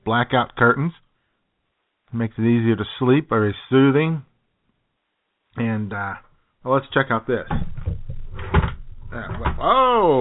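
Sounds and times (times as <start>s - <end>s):
speech: 0.0s - 1.0s, 2.1s - 4.3s, 5.6s - 7.7s, 9.1s - 10.2s
bedroom drawer sliding open with scraping rumbling pulls: 7.5s - 9.7s.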